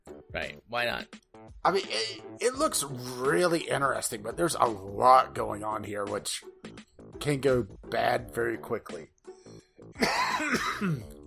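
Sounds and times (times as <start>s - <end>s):
speech: 0.4s - 6.5s, 7.2s - 9.1s, 10.0s - 11.2s
person clearing throat with a rough cough-like rasp: 10.0s - 11.2s.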